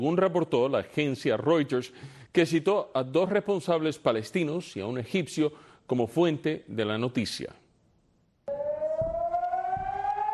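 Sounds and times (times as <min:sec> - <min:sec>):
speech: 0:00.0 - 0:07.6
air raid siren wailing: 0:08.5 - 0:10.3.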